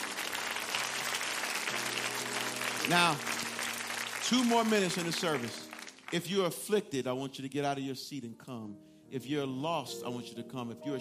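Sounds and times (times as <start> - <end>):
church congregation clapping hands in praise: 0.0 - 6.9
speech: 2.9 - 3.4, 4.3 - 11.0.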